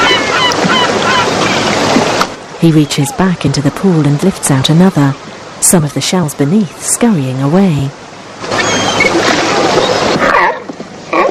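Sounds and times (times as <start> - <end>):
grey seals calling: 0.0 - 1.8, 2.6 - 4.2, 8.5 - 11.2
surf and splashing: 0.0 - 11.2
speech: 2.6 - 8.6.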